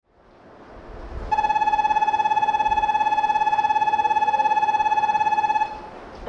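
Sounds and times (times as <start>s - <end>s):
bell ringing: 1.3s - 5.9s.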